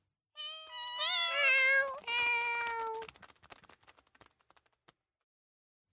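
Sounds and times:
several house cats meowing: 0.4s - 3.1s.

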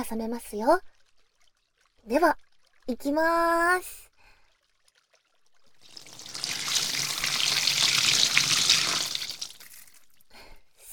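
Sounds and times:
speech: 0.0s - 1.0s, 2.0s - 4.1s
water running during a hair wash: 5.7s - 10.2s.

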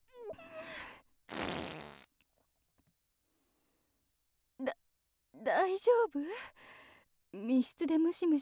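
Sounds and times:
flatulence from a middle-aged woman: 1.3s - 2.2s
speech: 5.8s - 8.4s.

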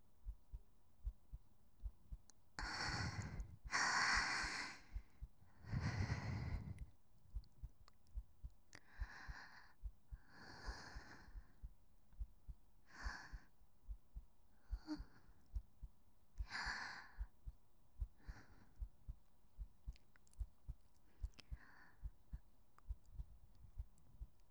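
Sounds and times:
steady heartbeat thumping: 0.0s - 24.4s
soft airy breaths: 2.6s - 7.8s, 8.7s - 11.8s, 14.6s - 15.6s, 18.0s - 19.2s, 19.9s - 24.4s.

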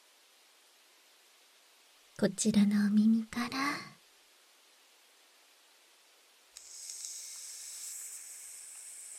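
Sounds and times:
speech: 2.2s - 3.8s
carbonated foam fizzing over ear microphone: 6.6s - 9.1s.

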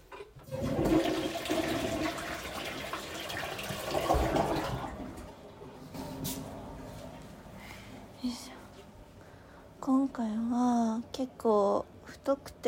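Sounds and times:
toilet flushing and refilling: 0.1s - 7.2s
speech: 9.9s - 12.6s.

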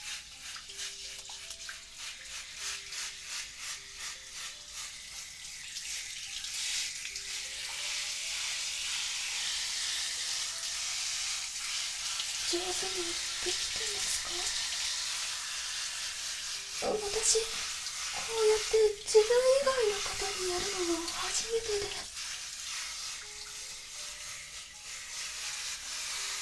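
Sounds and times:
water spraying from a shower head onto a person: 0.0s - 26.3s
speech: 12.5s - 14.6s, 16.8s - 22.1s.

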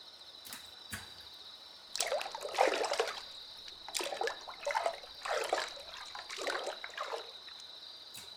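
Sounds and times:
faint hum: 0.0s - 8.3s
water trickling and splashing as someone gets into a hot bath: 1.9s - 8.3s.

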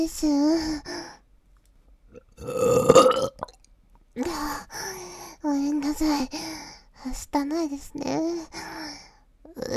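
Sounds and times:
speech: 0.0s - 1.0s, 2.4s - 3.5s, 4.2s - 9.7s
loud drawn-out burp: 2.2s - 3.6s
short belch-like vocal sound: 2.2s - 3.6s.

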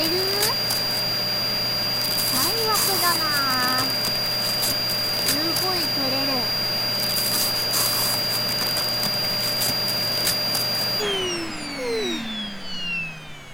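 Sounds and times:
vacuum cleaner running with high motor whine: 0.0s - 13.5s.

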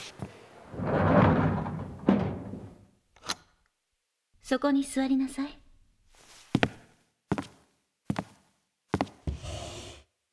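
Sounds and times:
door swinging shut with a whoosh and thump: 0.1s - 2.9s
speech: 4.5s - 5.6s.

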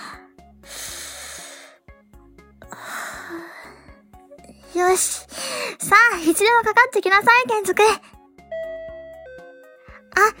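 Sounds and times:
deep breathing from a nervous person steadying themselves: 0.0s - 1.8s, 2.6s - 4.1s
soft music: 0.0s - 10.3s
speech: 4.8s - 8.1s.

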